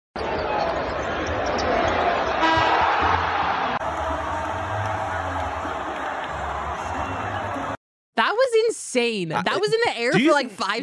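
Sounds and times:
arena crowd roaring at a basketball game: 0:00.4 - 0:07.8
speech: 0:09.0 - 0:10.8.

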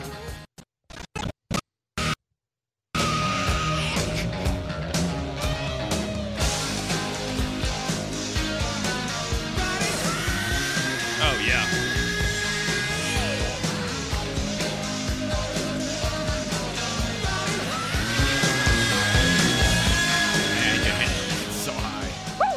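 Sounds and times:
rock song with screaming vocals over guitars and drums: 0:03.0 - 0:22.5
quick choppy bursts: 0:09.5 - 0:22.4.

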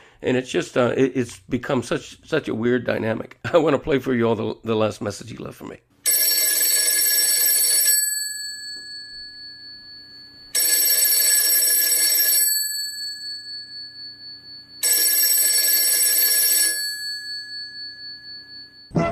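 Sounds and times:
speech: 0:00.2 - 0:05.9
telephone ringing with metallic bell trill: 0:06.0 - 0:19.0.

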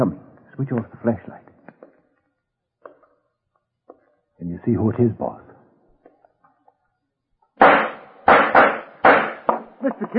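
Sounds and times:
speech: 0:00.0 - 0:01.4, 0:04.4 - 0:05.5, 0:09.8 - 0:10.1
gunshots fired at people in a drama scene at an old mansion at night: 0:07.6 - 0:09.6.

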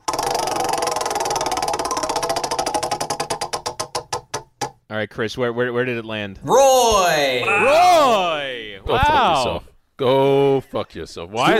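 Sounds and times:
spinning prize wheel ratcheting clicks: 0:00.0 - 0:03.8
speech: 0:04.9 - 0:11.5.

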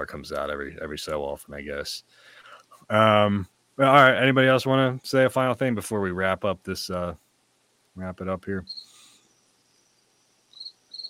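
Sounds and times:
speech: 0:00.0 - 0:07.2, 0:08.0 - 0:08.8
crickets chirping: 0:08.6 - 0:11.0.

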